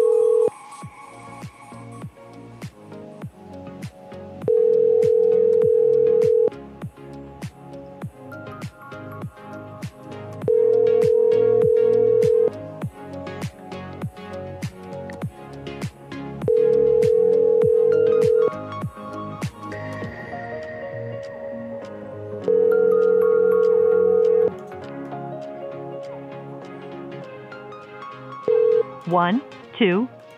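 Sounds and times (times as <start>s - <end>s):
outgoing call to a cell phone ringback tone: 0.0s - 0.6s, 4.4s - 6.5s, 10.5s - 12.5s, 16.5s - 18.7s, 22.4s - 24.5s, 28.5s - 29.1s
rhythmic music: 0.0s - 30.3s.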